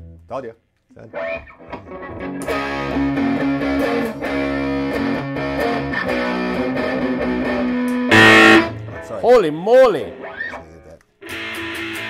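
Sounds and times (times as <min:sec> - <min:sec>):
speech: 0:00.3 - 0:07.8, 0:09.0 - 0:10.2
distorted electric guitar playing chugging riffs and sustained chords without a distortion pedal: 0:01.2 - 0:09.0.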